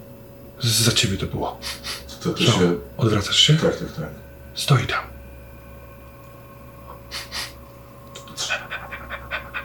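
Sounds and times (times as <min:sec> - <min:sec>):
low steady hum: 0:00.0 - 0:09.6
speech: 0:00.6 - 0:05.2
small mixed-breed dog panting with its tongue out: 0:08.2 - 0:09.6.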